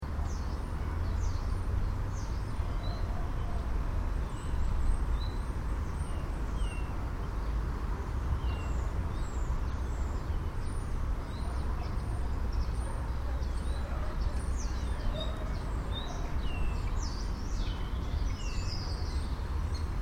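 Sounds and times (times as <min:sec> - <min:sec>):
birds in a town park: 0:00.0 - 0:20.0
road noise in background: 0:00.0 - 0:20.0.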